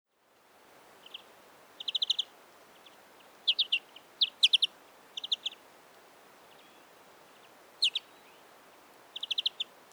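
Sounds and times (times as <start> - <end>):
faint background noise: 0.1 - 9.9
European greenfinch Chloris chloris chirping: 1.0 - 5.6, 6.5 - 8.4, 9.1 - 9.7.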